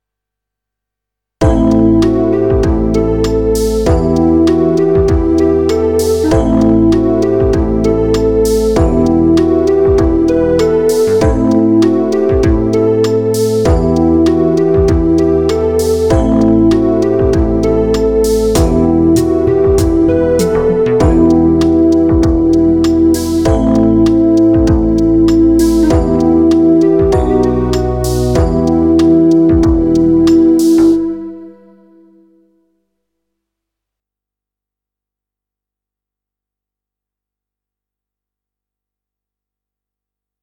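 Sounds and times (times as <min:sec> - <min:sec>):
riff in E minor: 0:01.4 - 0:31.8.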